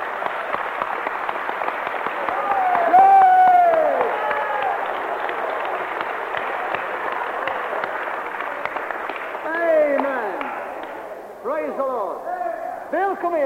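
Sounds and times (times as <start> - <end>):
large group of worshippers clapping: 0.0 - 11.6
voices calling out and cheering: 2.1 - 11.0.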